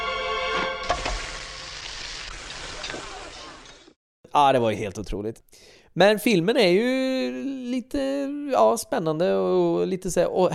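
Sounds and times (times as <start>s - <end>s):
tongue frying in a hot frying pan: 0.9s - 3.8s
speech: 4.4s - 10.5s.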